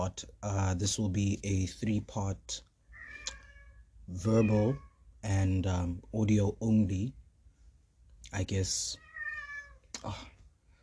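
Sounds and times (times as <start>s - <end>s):
speech: 0.0s - 2.7s, 4.1s - 7.2s, 8.3s - 9.0s, 10.0s - 10.3s
faint room noise: 0.0s - 10.8s
tuxedo cat meowing to be let out through a door: 3.0s - 4.9s, 9.0s - 9.8s.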